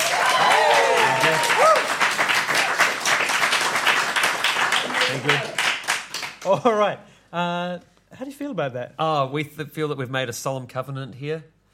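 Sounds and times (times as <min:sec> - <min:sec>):
audience voices whooping and calling out: 0:00.0 - 0:02.0
audience applauding to vote: 0:00.0 - 0:06.6
speech: 0:06.5 - 0:11.5.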